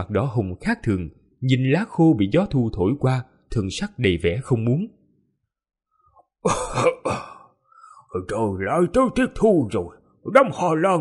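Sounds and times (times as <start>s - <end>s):
speech: 0.0s - 5.0s, 6.4s - 7.2s, 8.1s - 10.9s
old man coughing violently: 6.4s - 7.5s.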